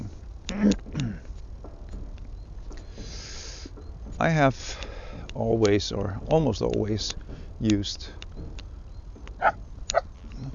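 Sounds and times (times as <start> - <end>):
low rumble: 0.0 - 10.5
speech: 4.2 - 4.8, 5.4 - 8.2
dog barking: 9.4 - 10.1.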